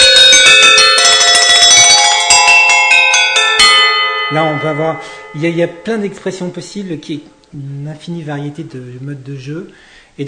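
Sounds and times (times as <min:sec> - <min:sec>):
metal percussion struck with mallets: 0:00.0 - 0:06.8
speech: 0:04.3 - 0:10.2.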